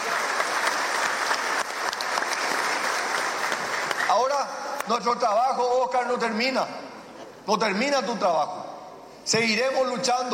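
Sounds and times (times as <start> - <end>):
crowd applauding: 0.0 - 4.6
speech: 4.2 - 6.8, 7.4 - 10.3.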